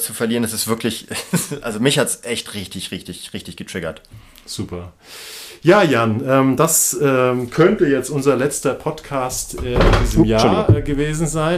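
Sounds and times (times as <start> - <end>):
speech: 0.0 - 11.5
laughter: 1.1 - 1.8
wooden chair creaking: 9.4 - 11.4.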